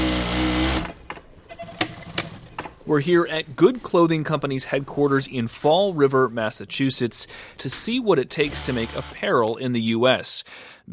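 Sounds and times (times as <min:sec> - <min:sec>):
sewing machine stitching clothes in a clothing factory in Fall River, Massachusetts: 0:00.0 - 0:02.7, 0:08.4 - 0:09.2
speech: 0:02.9 - 0:10.9.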